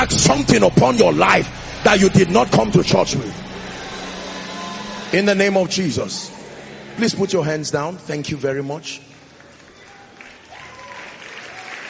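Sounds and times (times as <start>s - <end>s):
speech: 0.1s - 3.4s, 5.1s - 6.3s, 7.0s - 9.1s
audience clapping hands: 8.9s - 11.8s.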